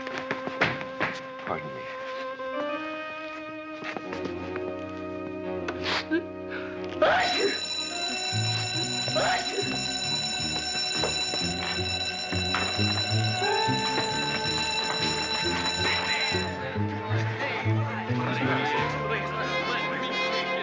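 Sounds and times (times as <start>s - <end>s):
busy music: 0.0s - 20.6s
speech: 1.5s - 1.9s
alarm bell set off by remote control ringing: 7.1s - 17.2s.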